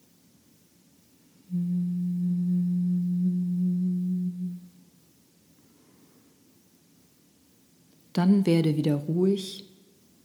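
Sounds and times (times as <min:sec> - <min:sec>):
person humming a low steady tone: 0:01.5 - 0:04.8
speech: 0:08.2 - 0:09.7.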